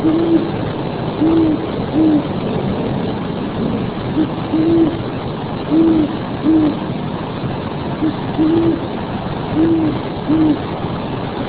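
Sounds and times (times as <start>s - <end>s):
owl calling with soft low hoots: 0.0s - 0.5s, 1.2s - 2.3s, 4.1s - 5.0s, 5.7s - 6.8s, 8.0s - 8.8s, 9.5s - 10.6s
faint background rumble: 0.0s - 11.4s.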